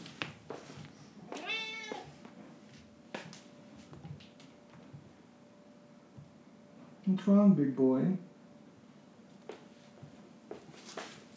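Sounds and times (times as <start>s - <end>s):
faint steady hum: 0.0s - 11.3s
cat meowing: 1.2s - 2.2s
speech: 7.1s - 8.3s.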